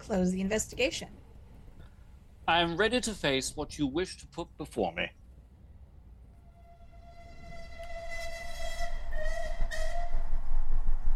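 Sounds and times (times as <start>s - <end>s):
passenger train rumbling on rails in London: 0.0s - 11.1s
speech: 0.1s - 1.2s, 2.5s - 5.2s.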